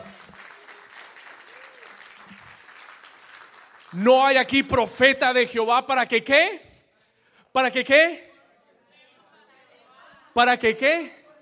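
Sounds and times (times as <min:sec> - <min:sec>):
audience applauding: 0:00.0 - 0:04.5
speech: 0:03.9 - 0:06.7, 0:07.6 - 0:08.3, 0:10.4 - 0:11.2.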